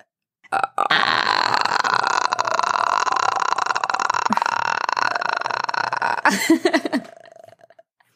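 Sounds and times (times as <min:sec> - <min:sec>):
person imitating a ghostly guttural croak: 0:00.0 - 0:07.9
speech: 0:00.5 - 0:00.8, 0:06.3 - 0:07.0
laughter: 0:06.3 - 0:07.2.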